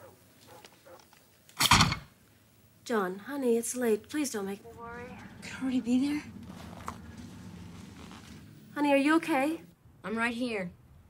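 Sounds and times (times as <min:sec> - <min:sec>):
dog barking: 0:00.0 - 0:01.1
speech: 0:02.9 - 0:06.4, 0:08.8 - 0:10.8.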